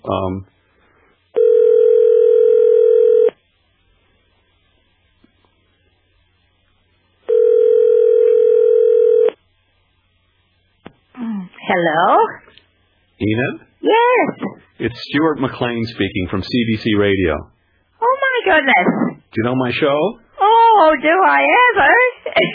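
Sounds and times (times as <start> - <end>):
speech: 0.0 - 0.6, 11.7 - 12.6, 13.2 - 17.6, 18.4 - 20.2, 20.8 - 22.5
telephone line tones as a call is dialled: 1.4 - 3.4, 7.3 - 9.4.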